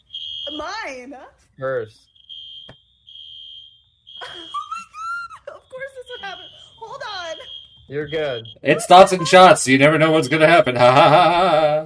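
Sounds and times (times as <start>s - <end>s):
fire alarm high-pitched electronic tone: 0.0s - 1.1s, 1.9s - 11.7s
speech: 0.6s - 2.1s, 6.2s - 11.8s
people laughing: 4.2s - 5.6s, 8.1s - 11.8s.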